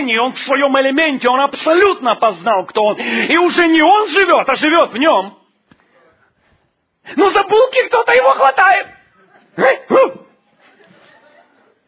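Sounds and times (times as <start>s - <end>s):
speech: 0.0s - 5.4s, 7.1s - 9.0s, 9.6s - 10.2s
laughter: 9.0s - 9.7s, 10.5s - 11.8s
dog barking: 9.6s - 10.4s.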